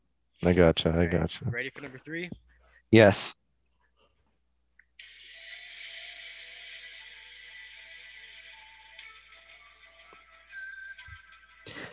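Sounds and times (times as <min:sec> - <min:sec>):
speech: 0:00.4 - 0:03.4
eerie whistled TV theme melody: 0:06.8 - 0:11.9.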